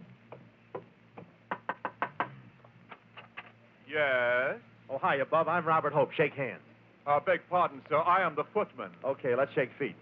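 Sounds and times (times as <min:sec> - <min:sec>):
knocking on the door of a house: 0:00.3 - 0:02.4
speech: 0:03.9 - 0:09.9.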